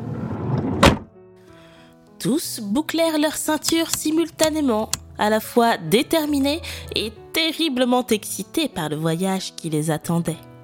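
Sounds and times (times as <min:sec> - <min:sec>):
van sliding door rolling along its track and slamming shut: 0:00.4 - 0:01.1
speech: 0:02.2 - 0:10.5.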